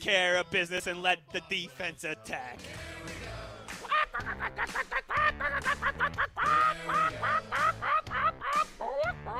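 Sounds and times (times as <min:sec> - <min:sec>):
speech: 0:00.0 - 0:03.4, 0:04.2 - 0:08.0
laughter: 0:03.8 - 0:09.3
ducks quacking loudly: 0:05.2 - 0:09.3.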